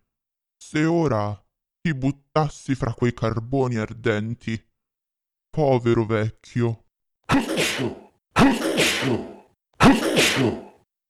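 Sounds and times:
speech: 0.7 - 4.7, 5.5 - 10.7
voice imitating loud explosive sneezes: 7.3 - 10.8.

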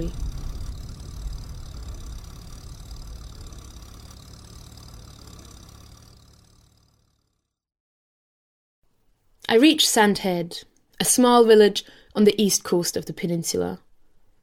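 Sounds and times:
tractor engine drone on a road past farms: 0.0 - 7.5
speech: 9.5 - 13.9.

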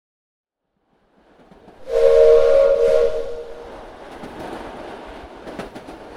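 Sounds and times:
train rumbling as it passes slowly: 0.8 - 6.1
train whistle blast: 1.8 - 3.9.

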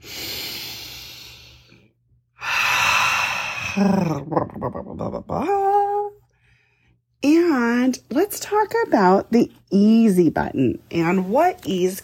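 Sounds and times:
deep breath in and out with sigh-like exhale: 0.0 - 3.8, 6.3 - 7.1
speech: 3.8 - 5.8, 7.5 - 12.0.

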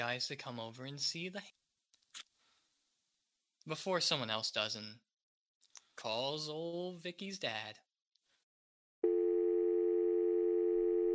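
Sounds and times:
speech: 0.0 - 1.6, 3.7 - 5.0, 6.0 - 7.8
telephone dial tone after hang-up: 9.0 - 11.1.

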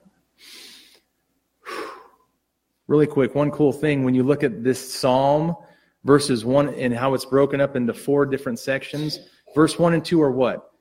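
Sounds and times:
person breathing: 0.4 - 2.4, 5.6 - 6.0
speech: 2.9 - 10.7.

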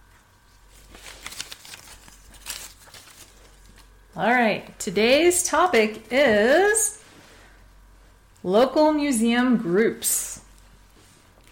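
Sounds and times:
paper slips rustling in a ball cap: 0.5 - 3.9
speech: 4.2 - 7.0, 8.4 - 10.4.

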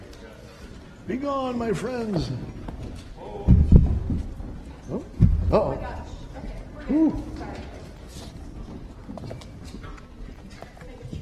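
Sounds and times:
speech: 1.1 - 2.6, 4.9 - 6.0, 6.9 - 7.6
hooves of a herd of horses galloping out: 2.6 - 11.2.

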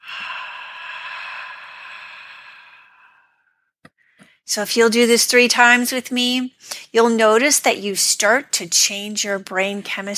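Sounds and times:
long exaggerated yogic exhale with an open breathy hiss: 0.0 - 3.5
speech: 4.5 - 10.1.

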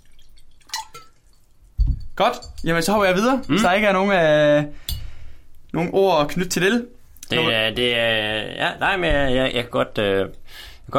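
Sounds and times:
water poured into a glass: 0.0 - 1.6
speech: 2.2 - 4.8, 5.7 - 10.9.

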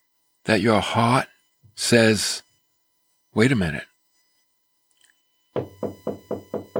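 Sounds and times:
speech: 0.4 - 2.5, 3.4 - 3.9
firm knocking on a wooden door: 5.6 - 6.7.

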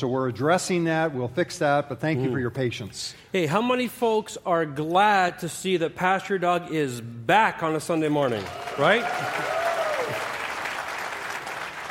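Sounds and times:
speech: 0.0 - 9.6
audience applauding: 8.3 - 11.8.

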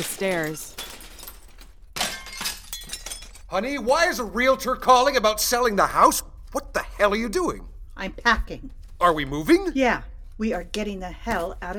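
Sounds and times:
speech: 0.0 - 0.8, 3.5 - 11.7
bright tinkling debris: 0.0 - 3.5
fragile precious items shattering into pieces: 0.0 - 3.5
smaller crack of breaking pieces: 0.0 - 3.5.

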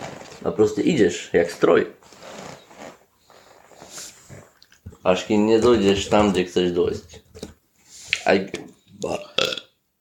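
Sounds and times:
speech: 0.4 - 2.2, 5.0 - 7.3, 8.2 - 9.2
loud croaky burp: 9.1 - 9.8.

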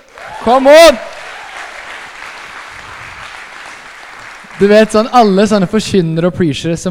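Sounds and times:
sizable audience applauding: 0.0 - 5.1
speech: 0.4 - 1.1, 4.6 - 6.8.

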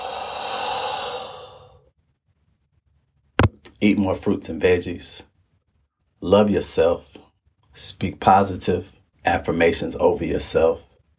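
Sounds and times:
deep slow breath exhaling during a mindfulness moment: 0.0 - 1.9
speech: 3.8 - 5.3, 6.2 - 7.2, 7.8 - 10.9.

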